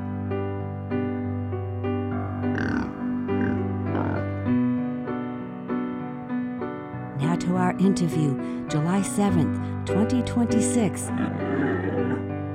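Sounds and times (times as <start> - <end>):
piano-led instrumental song with sustained notes and chord changes: 0.0 - 12.5
rough snorting grunt-like sounds: 2.1 - 4.3, 11.1 - 12.3
speech: 7.8 - 11.4.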